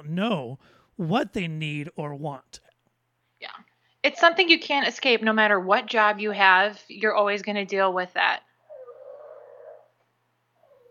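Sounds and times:
speech: 0.0s - 2.7s, 3.4s - 8.5s
dog whining in a high nasal tone: 8.6s - 10.8s.

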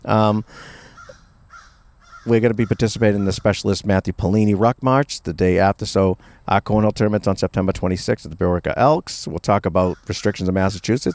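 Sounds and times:
speech: 0.0s - 0.8s, 2.2s - 11.1s
faint hiss: 0.0s - 11.1s
crow giving a loud harsh caw: 0.8s - 3.4s.

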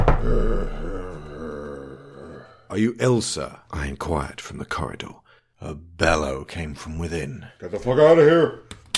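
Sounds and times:
man groaning behind a door: 0.0s - 2.7s
speech: 2.7s - 8.9s.

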